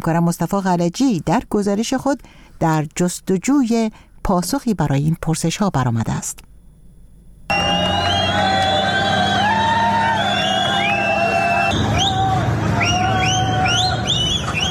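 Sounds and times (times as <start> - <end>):
speech: 0.0 - 6.5
crowd whistle blasts: 7.5 - 14.7
large crowd of migrants shouting: 7.5 - 14.7.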